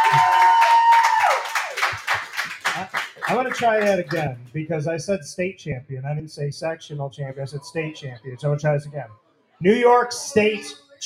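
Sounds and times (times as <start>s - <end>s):
crowd in a pizza pub cheering: 0.0s - 3.9s
crowd in a pizza pub clapping: 0.0s - 4.4s
speech: 3.3s - 11.0s.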